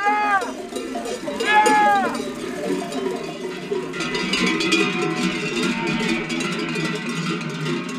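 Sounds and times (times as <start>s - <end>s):
sheep bleating: 0.0s - 0.6s, 1.3s - 3.0s, 4.6s - 6.3s
many sheep bells clanking as a flock moves: 0.0s - 7.9s
steady outdoor noise: 0.0s - 7.9s.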